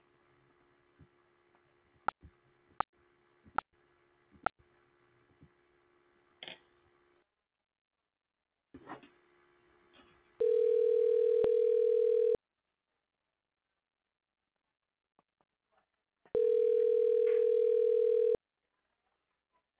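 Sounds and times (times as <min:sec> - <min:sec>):
telephone line humming as a call is placed: 0:10.4 - 0:12.4, 0:16.4 - 0:18.4.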